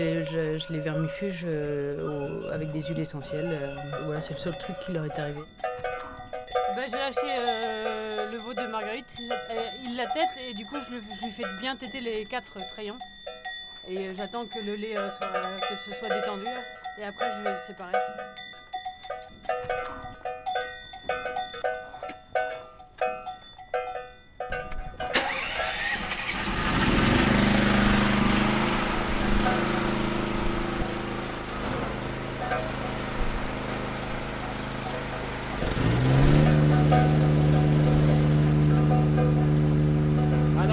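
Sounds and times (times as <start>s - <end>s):
speech: 0.0s - 5.8s, 6.8s - 13.2s, 13.8s - 18.4s
engine running: 0.0s - 12.2s, 25.0s - 40.7s
metallic clinking: 0.0s - 40.7s.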